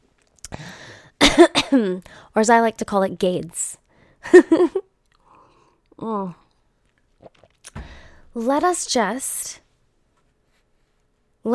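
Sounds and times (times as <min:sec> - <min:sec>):
raspy breathy stretch: 0:00.5 - 0:01.2, 0:07.8 - 0:08.3
person coughing: 0:01.2 - 0:02.0
speech: 0:01.4 - 0:04.8, 0:06.0 - 0:06.4, 0:08.4 - 0:09.6.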